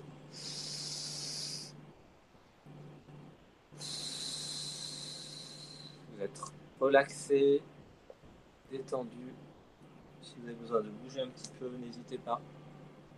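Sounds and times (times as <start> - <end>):
low steady hum: 0.0 - 13.1
deep breath in and out during a guided relaxation session: 0.3 - 1.8, 3.7 - 6.1
speech: 6.2 - 7.7, 8.7 - 9.5, 10.2 - 12.6.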